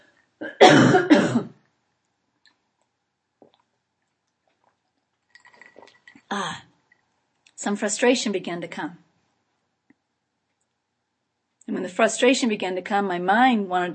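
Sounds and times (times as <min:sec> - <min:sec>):
person coughing from a tickling throat: 0:00.4 - 0:01.5
throat clearing from a tickling throat: 0:00.4 - 0:01.5
faint small clicks: 0:01.6 - 0:07.6
speech: 0:07.7 - 0:09.1, 0:11.9 - 0:13.9.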